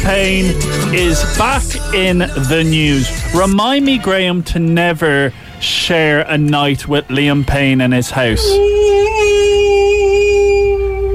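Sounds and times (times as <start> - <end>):
speech: 0.0 - 9.9
ghostly howling sound effect: 8.3 - 11.1.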